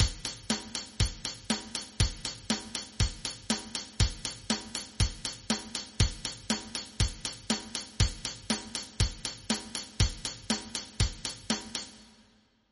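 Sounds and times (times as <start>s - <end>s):
rock rhythm: 0.0s - 12.0s.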